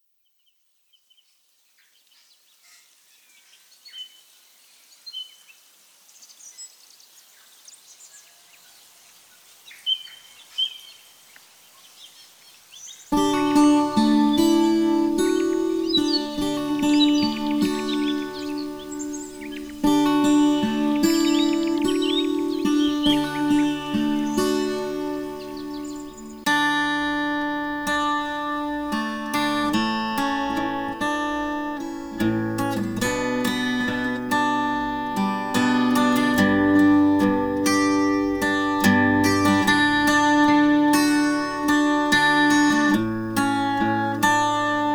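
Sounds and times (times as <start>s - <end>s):
ambient acoustic guitar: 13.1s - 44.9s.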